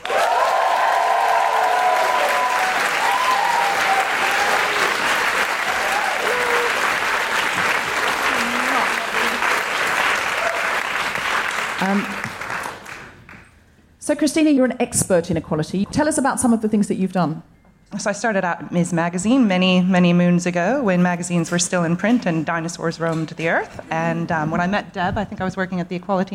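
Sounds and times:
live audience applauding at a feminist comedy event: 0:00.0 - 0:13.5
speech: 0:14.1 - 0:26.3.

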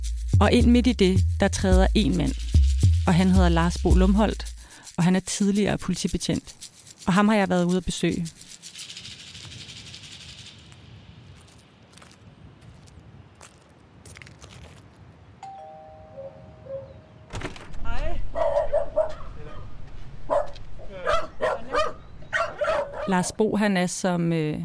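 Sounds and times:
speech: 0:00.4 - 0:02.5, 0:03.1 - 0:08.5, 0:23.2 - 0:24.6
rustling noise: 0:03.6 - 0:15.1
two small dogs barking at a small house in Karise Denmark: 0:18.3 - 0:19.7, 0:20.3 - 0:23.2.

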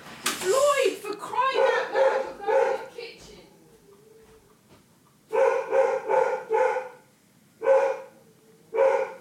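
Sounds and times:
dog barking loudly: 0:01.4 - 0:03.0, 0:05.3 - 0:09.1.

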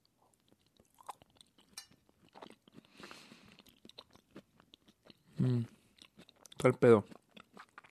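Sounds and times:
wet chewing of a bite of apple pie: 0:00.3 - 0:07.8
faint clink of a utensil: 0:01.8 - 0:02.0
speech: 0:05.4 - 0:05.8, 0:06.6 - 0:07.2.

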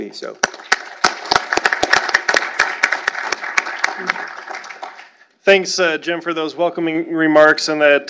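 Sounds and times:
speech: 0:00.0 - 0:00.7, 0:04.0 - 0:04.4, 0:05.5 - 0:08.0
audience applauding at a panel event: 0:00.3 - 0:05.2.

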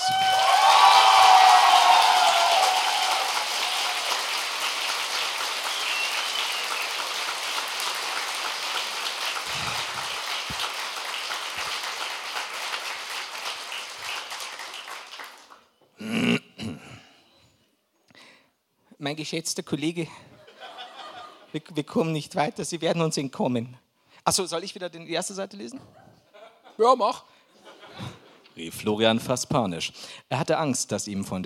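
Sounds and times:
live audience applause: 0:00.0 - 0:15.6
speech: 0:19.1 - 0:20.3, 0:21.5 - 0:26.0, 0:26.8 - 0:27.3, 0:28.0 - 0:31.4.

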